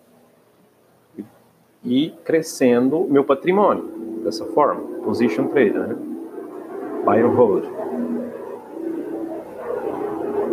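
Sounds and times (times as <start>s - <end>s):
speech: 1.2s - 6.1s, 7.0s - 8.1s
military helicopter passing overhead: 2.1s - 10.5s.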